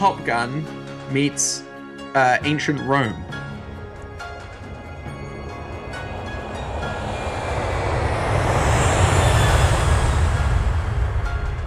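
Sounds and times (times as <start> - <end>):
speech: 0.0 - 3.4
plane flying past: 3.3 - 11.6.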